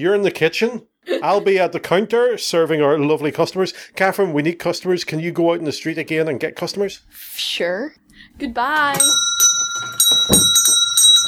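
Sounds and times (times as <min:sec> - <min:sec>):
speech: 0:00.0 - 0:09.6
shop door bell ringing: 0:08.9 - 0:11.2
soft thump: 0:10.3 - 0:10.7.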